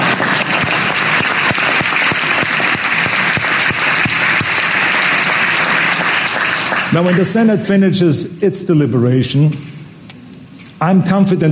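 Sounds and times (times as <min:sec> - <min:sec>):
large crowd applauding: 0:00.0 - 0:07.6
speech: 0:07.0 - 0:09.8, 0:10.8 - 0:11.4.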